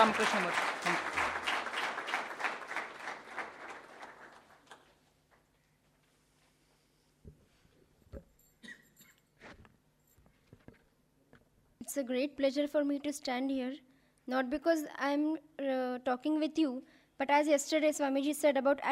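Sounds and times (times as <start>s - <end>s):
speech: 0.0s - 1.0s, 11.9s - 18.9s
audience applauding for a physically handicapped guest: 0.0s - 5.1s.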